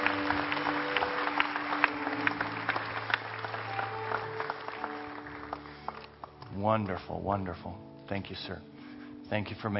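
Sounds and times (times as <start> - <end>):
audience applauding: 0.0 - 6.5
soft sustained musical tones: 0.0 - 9.7
speech: 6.6 - 8.7, 9.3 - 9.7.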